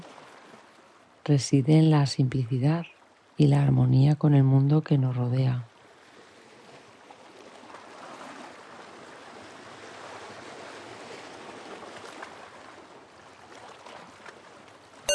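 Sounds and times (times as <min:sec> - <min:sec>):
gentle ocean waves washing onto a beach: 0:00.0 - 0:02.0, 0:05.1 - 0:15.1
speech: 0:01.3 - 0:05.7.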